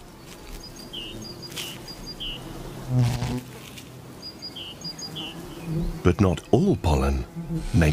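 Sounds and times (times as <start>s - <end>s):
bees buzzing around pussy willow catkins: 0.0s - 7.9s
small birds chirping: 0.0s - 7.9s
speech: 2.9s - 3.5s, 6.0s - 7.9s.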